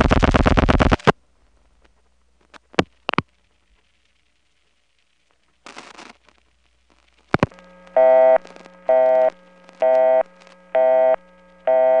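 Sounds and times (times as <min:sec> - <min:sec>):
telephone line noise: 0:00.0 - 0:01.1, 0:02.7 - 0:11.9
clicks: 0:07.3 - 0:11.9
loud buzz: 0:07.4 - 0:11.9
telephone busy signal: 0:07.9 - 0:11.9.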